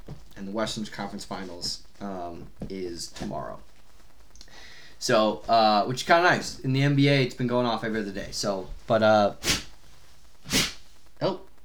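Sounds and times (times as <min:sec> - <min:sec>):
speech: 0:00.4 - 0:03.7, 0:05.0 - 0:09.6, 0:11.2 - 0:11.4
person sneezing: 0:09.4 - 0:09.7, 0:10.5 - 0:10.8.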